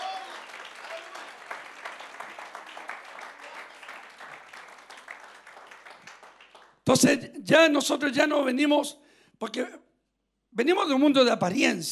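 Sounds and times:
audience applauding: 0:00.0 - 0:06.8
speech: 0:06.9 - 0:09.8, 0:10.6 - 0:11.9.

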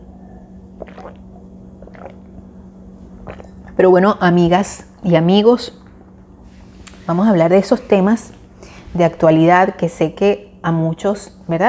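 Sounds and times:
low steady hum: 0:00.0 - 0:11.6
person sipping and swallowing water: 0:00.7 - 0:03.8
speech: 0:03.3 - 0:05.8, 0:07.1 - 0:11.6.

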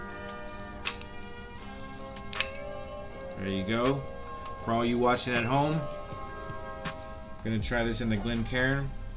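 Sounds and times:
twist-off cap unscrewed from whiskey bottle with small clicks and seal snapping: 0:00.7 - 0:03.3
speech: 0:03.4 - 0:06.0, 0:07.4 - 0:09.0.

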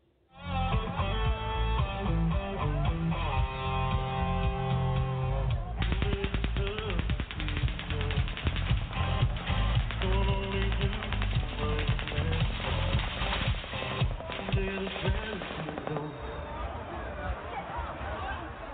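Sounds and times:
crowd noise at outdoor concert: 0:00.0 - 0:18.7
loud amplified music at outdoor concert: 0:00.4 - 0:16.1
rapid gunfire at outdoor concert: 0:05.8 - 0:16.4.

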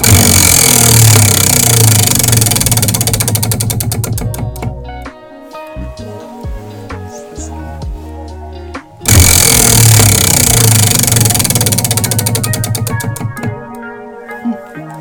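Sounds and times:
spinning wheel clattering with rapid ticking: 0:00.0 - 0:04.8, 0:09.1 - 0:13.7.

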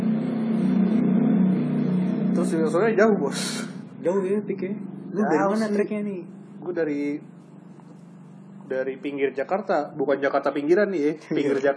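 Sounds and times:
motorcycle passing by: 0:00.0 - 0:09.2
speech: 0:02.4 - 0:07.3, 0:08.7 - 0:11.7.

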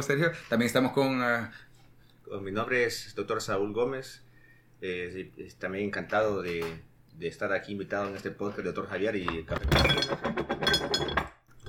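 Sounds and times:
speech: 0:00.0 - 0:01.7, 0:02.3 - 0:10.8
ceramic coffee cups and plates clinking: 0:09.4 - 0:11.6.

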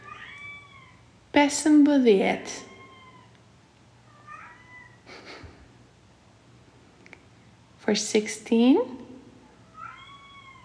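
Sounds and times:
cat meowing softly: 0:00.0 - 0:01.0, 0:02.6 - 0:03.4, 0:04.1 - 0:05.0, 0:09.6 - 0:10.6
low steady hum: 0:00.0 - 0:10.6
speech: 0:01.4 - 0:02.7, 0:07.9 - 0:09.0.

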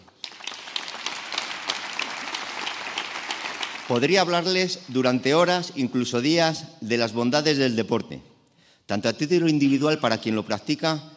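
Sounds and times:
room full of people applauding: 0:00.0 - 0:04.5
speech: 0:03.9 - 0:08.3, 0:08.9 - 0:11.1.

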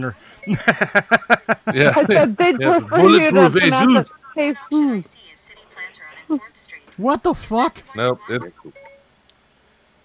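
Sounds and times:
speech: 0:00.0 - 0:05.4, 0:06.3 - 0:08.8
laughter: 0:00.4 - 0:04.5
phone Siri voice assistant activation chime: 0:08.7 - 0:09.1.

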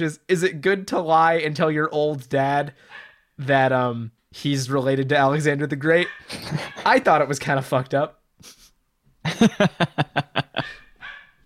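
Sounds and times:
speech: 0:00.0 - 0:08.6, 0:09.2 - 0:10.8
dog barking: 0:02.9 - 0:03.2, 0:06.0 - 0:07.0, 0:10.6 - 0:11.4
laughter: 0:06.3 - 0:07.1, 0:09.3 - 0:10.9.

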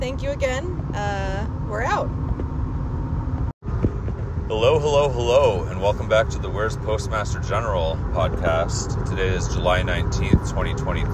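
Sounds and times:
road noise inside a moving car: 0:00.0 - 0:11.1
speech: 0:04.5 - 0:11.1.

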